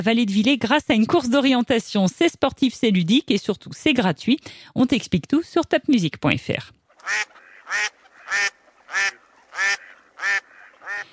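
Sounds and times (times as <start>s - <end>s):
speech: 0.0s - 10.4s
duck quacking: 6.9s - 11.1s.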